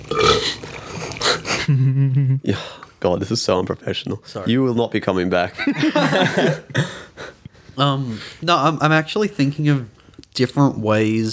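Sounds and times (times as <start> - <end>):
loud throaty burp: 0.0 - 0.6
laughter: 1.5 - 2.4, 5.6 - 7.3
speech: 3.0 - 7.0, 7.8 - 11.3.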